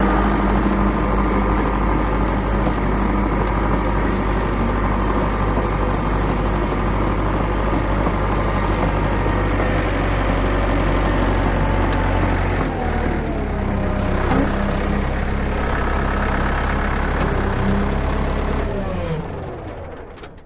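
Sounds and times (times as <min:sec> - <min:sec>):
bulldozer running steady and slow: 0:00.0 - 0:20.4.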